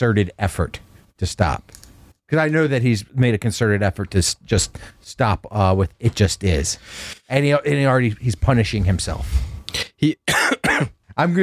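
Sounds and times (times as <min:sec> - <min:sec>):
speech: 0:00.0 - 0:11.4
man coughing hard: 0:10.0 - 0:11.1.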